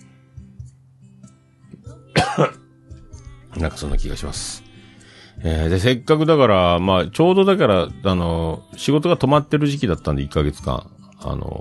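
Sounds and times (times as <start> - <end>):
person coughing: 2.1 - 2.6
speech: 2.4 - 2.6, 3.6 - 4.7, 5.4 - 11.5.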